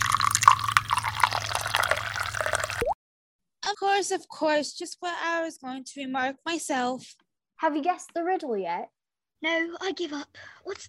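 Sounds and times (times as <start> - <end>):
hot tea being poured: 0.0 - 3.0
speech: 4.0 - 10.8.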